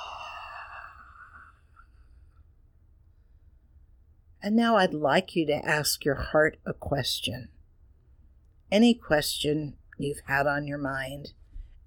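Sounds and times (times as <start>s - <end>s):
slow exhale of breath during a guided relaxation exercise: 0.0s - 2.1s
speech: 4.4s - 7.6s, 8.7s - 11.4s.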